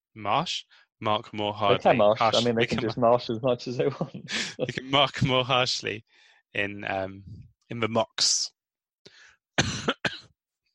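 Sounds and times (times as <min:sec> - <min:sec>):
speech: 0:00.2 - 0:08.6
person coughing: 0:09.6 - 0:10.3.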